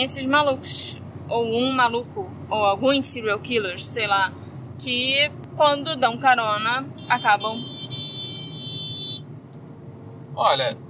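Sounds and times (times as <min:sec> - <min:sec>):
speech: 0:00.0 - 0:07.7, 0:10.4 - 0:10.8
low traffic rumble: 0:00.0 - 0:10.8
long car horn blast on a road: 0:06.9 - 0:09.3.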